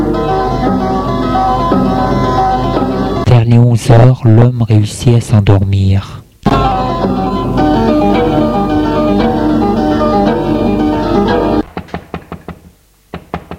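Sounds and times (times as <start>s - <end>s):
dense steady musical hum: 0.0s - 3.4s, 6.4s - 11.7s
speech: 3.5s - 6.2s
knocking on a door: 11.7s - 13.5s.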